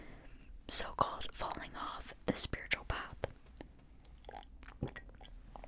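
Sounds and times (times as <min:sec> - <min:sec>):
speech: 0:00.7 - 0:01.1, 0:02.3 - 0:02.7
sipping an energy drink: 0:04.0 - 0:05.6
slurp and gulp: 0:04.0 - 0:05.6.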